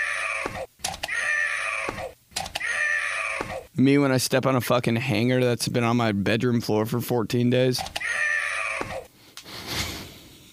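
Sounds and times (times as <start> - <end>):
recorded scream from a toy or commercial: 0.0 - 3.7, 8.0 - 9.1
speech: 3.8 - 8.0.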